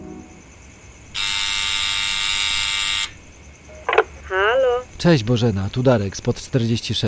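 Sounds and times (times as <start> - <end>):
apartment building intercom buzzing: 1.2 - 4.9
speech: 5.0 - 7.0.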